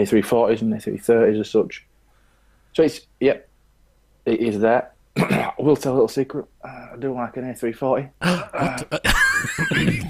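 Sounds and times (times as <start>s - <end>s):
speech: 0.0s - 1.9s, 2.7s - 3.5s, 4.2s - 10.0s
several people coughing loudly: 5.2s - 5.6s, 8.2s - 10.0s.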